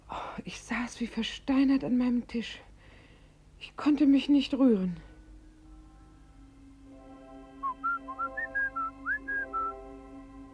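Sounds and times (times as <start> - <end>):
steady low hum: 0.0 - 10.5
speech: 0.4 - 2.7, 3.6 - 5.1
person whistling a quick melodic phrase: 7.6 - 9.8.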